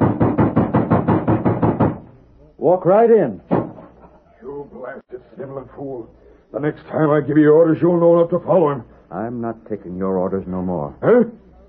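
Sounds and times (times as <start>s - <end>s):
heavy rapid pounding on a door: 0.0s - 2.1s
speech: 2.6s - 3.5s, 4.9s - 11.4s.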